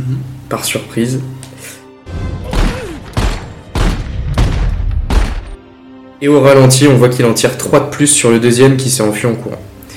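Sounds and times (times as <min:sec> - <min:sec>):
speech: 0:00.0 - 0:01.8, 0:06.2 - 0:09.7
gunshots in a film scene: 0:02.5 - 0:05.6.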